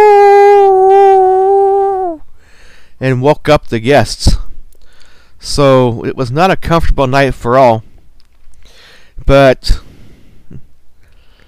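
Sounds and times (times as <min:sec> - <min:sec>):
coyote howling at night: 0:00.0 - 0:02.3
speech: 0:03.0 - 0:04.5, 0:05.4 - 0:07.9, 0:09.3 - 0:09.8.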